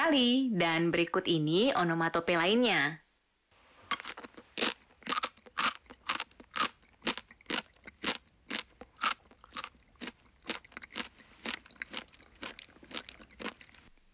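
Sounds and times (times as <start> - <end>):
speech: 0.1 - 3.0
crunchy chewing of something hard: 3.8 - 14.1.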